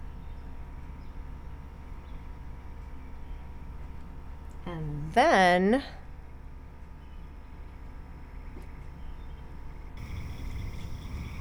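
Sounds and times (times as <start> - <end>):
speech: 4.7 - 6.0
night chorus of calling frogs: 10.0 - 11.3.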